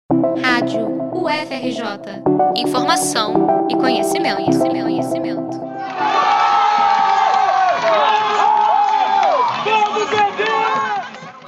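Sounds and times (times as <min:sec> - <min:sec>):
speech: 0:00.2 - 0:06.5
esports fans cheering and shouting in arena: 0:05.7 - 0:11.4.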